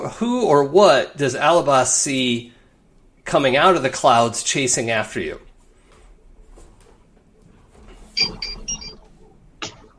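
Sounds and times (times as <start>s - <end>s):
speech: 0.1s - 2.6s, 3.3s - 5.5s, 8.2s - 8.5s
phone alarm tone with high bright electronic beeps: 8.2s - 9.9s.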